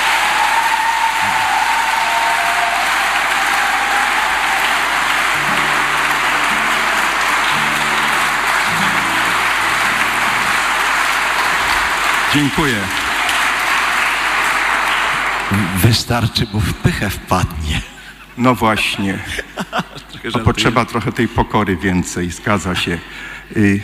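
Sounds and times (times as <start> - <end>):
crowd applauding a priest who wrote a song: 0.0 - 16.8, 20.3 - 21.2
laughter: 1.2 - 14.5, 15.1 - 23.0
speech: 12.4 - 13.0, 15.5 - 23.8.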